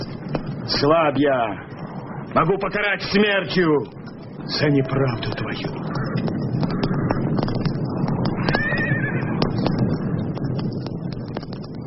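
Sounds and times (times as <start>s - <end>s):
steady noisy background: 0.0s - 11.8s
speech: 0.7s - 1.7s, 2.3s - 6.0s
horse neighing: 8.4s - 9.4s.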